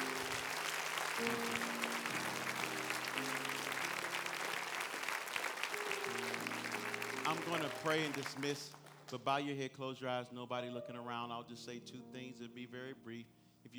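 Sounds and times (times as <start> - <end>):
crowd clapping in praise to God: 0.0 - 9.6
speech: 1.2 - 1.8, 7.3 - 13.7.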